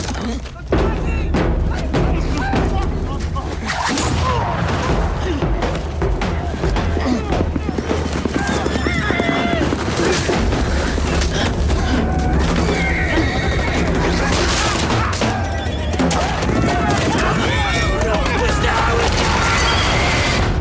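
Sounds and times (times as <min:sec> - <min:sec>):
human grunts and shouts: 0:00.1 - 0:20.4
horses neighing and whinnying in a film scene: 0:06.7 - 0:20.0.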